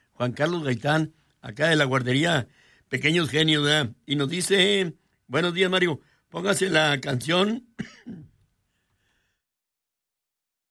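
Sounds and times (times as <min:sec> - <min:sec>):
speech: 0:00.2 - 0:08.3
short gravelly throat-clearing cough: 0:07.8 - 0:08.4.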